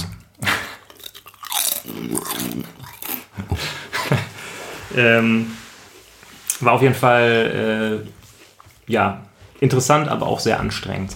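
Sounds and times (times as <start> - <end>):
crunching potato chips while eating: 0.7 - 3.4
speech: 2.1 - 3.8, 4.9 - 5.6, 6.6 - 8.2, 8.9 - 11.1
laughter: 3.4 - 4.8.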